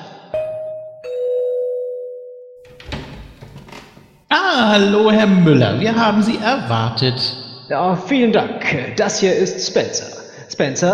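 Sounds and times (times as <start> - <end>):
two-tone doorbell ding-dong at a studio: 0.4 - 2.8
speech: 4.6 - 10.9.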